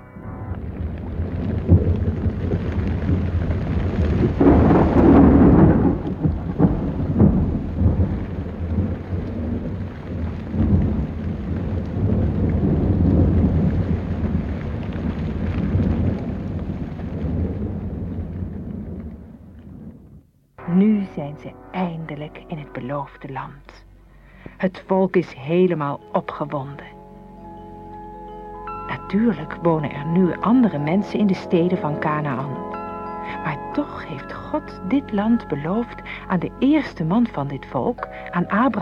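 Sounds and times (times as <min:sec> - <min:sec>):
huge wall of water crashing down: 0:00.6 - 0:17.6
speech: 0:21.4 - 0:21.6, 0:22.2 - 0:23.9, 0:24.6 - 0:27.0, 0:28.9 - 0:38.8.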